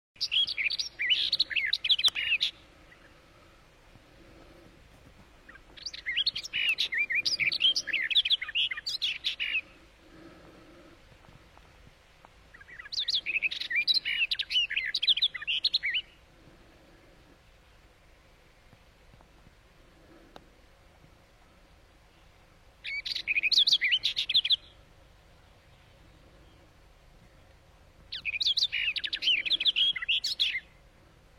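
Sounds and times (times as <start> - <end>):
barred warbler singing: 0.2 - 3.2, 5.4 - 10.8, 12.5 - 16.2, 22.1 - 24.8, 25.4 - 31.0.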